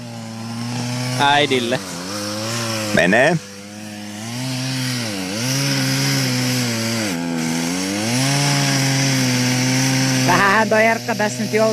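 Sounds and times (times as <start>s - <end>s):
chainsaw cutting a notch into a tree: 0.0s - 11.7s
speech: 1.2s - 1.9s, 2.9s - 3.5s, 10.6s - 11.7s.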